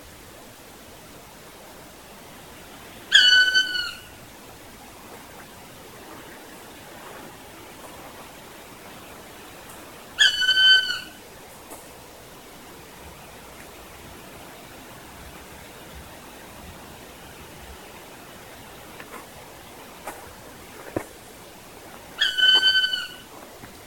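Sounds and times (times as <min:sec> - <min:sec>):
European black woodpecker call: 0:03.1 - 0:04.2, 0:10.2 - 0:11.2, 0:22.2 - 0:23.3.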